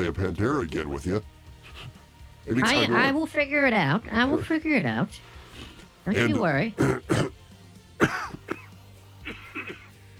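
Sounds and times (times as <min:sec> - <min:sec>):
speech: 0:00.0 - 0:07.3
rough coughs played from a cough button: 0:06.2 - 0:07.4, 0:08.0 - 0:10.0
throat clearing played from a cough button: 0:06.8 - 0:07.4, 0:08.0 - 0:10.0.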